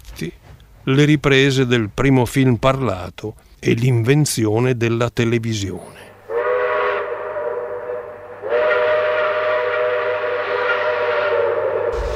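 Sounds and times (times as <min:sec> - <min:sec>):
steam train rumbling: 0:00.0 - 0:02.8, 0:06.3 - 0:12.1
speech: 0:00.2 - 0:06.1
steam train whistle: 0:06.2 - 0:12.1.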